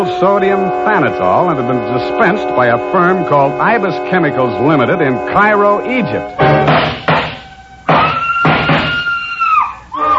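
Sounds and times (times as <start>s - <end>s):
speech: 0.0s - 7.1s
heavy noisy bursts: 0.0s - 10.1s
high frenzied woman's scream: 8.0s - 10.1s.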